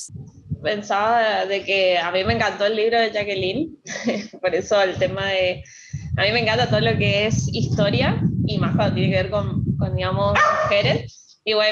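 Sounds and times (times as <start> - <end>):
speech: 0.0 - 11.7
laughter: 3.9 - 4.4
dog barking in loud sharp bursts: 10.4 - 10.8.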